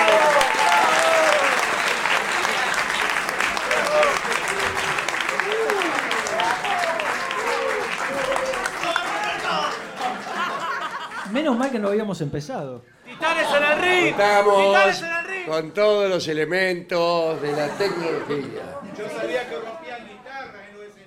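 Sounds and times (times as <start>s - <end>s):
cheers: 0.0s - 10.5s
audience applauding: 0.0s - 11.2s
laughter: 7.5s - 11.6s, 17.2s - 19.4s
speech: 11.8s - 19.8s.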